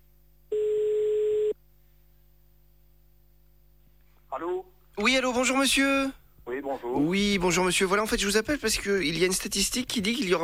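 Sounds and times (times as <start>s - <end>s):
faint hum: 0.0s - 10.4s
telephone ringing tone: 0.5s - 1.6s
speech: 5.0s - 10.4s.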